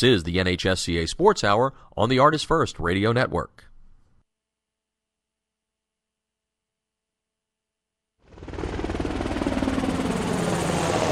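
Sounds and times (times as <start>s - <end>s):
speech: 0.0s - 3.7s
Navy Seahawk helicopter rotor thumping in flight: 8.3s - 11.1s.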